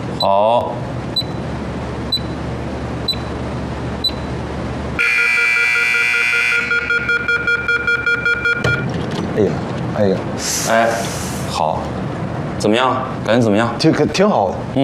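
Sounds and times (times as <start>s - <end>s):
speech: 0.2s - 0.9s, 9.4s - 14.8s
electronic timer beeping after a door is locked: 1.1s - 1.5s, 2.1s - 2.4s, 3.0s - 3.4s, 4.0s - 4.3s, 5.0s - 8.9s.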